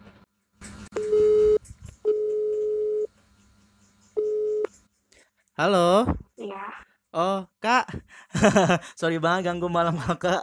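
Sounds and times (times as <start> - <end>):
electronic telephone ringback tone while placing a call: 1.0 - 3.1, 4.2 - 4.7
speech: 5.6 - 6.2, 7.1 - 10.4
laughter: 8.3 - 8.8.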